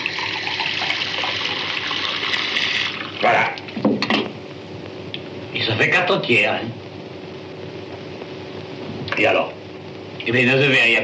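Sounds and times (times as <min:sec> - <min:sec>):
water poured into a glass: 0:00.0 - 0:03.2
speech: 0:03.2 - 0:03.6, 0:05.7 - 0:06.8, 0:09.2 - 0:09.4, 0:10.3 - 0:11.0.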